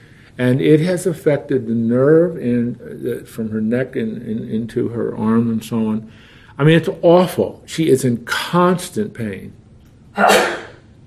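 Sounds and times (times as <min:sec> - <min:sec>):
speech: 0:00.4 - 0:09.6, 0:10.2 - 0:10.6
sharp sneeze: 0:10.2 - 0:10.8.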